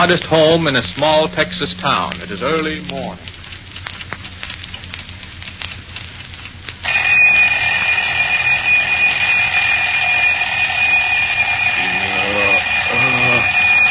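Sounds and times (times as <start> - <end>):
speech: 0.0 - 3.3
loud alarm clock bell ringing in a modest home: 6.8 - 13.8.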